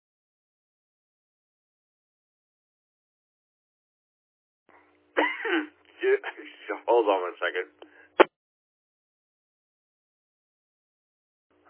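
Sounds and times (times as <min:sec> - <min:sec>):
person coughing: 0:05.2 - 0:05.7
speech: 0:05.5 - 0:07.9.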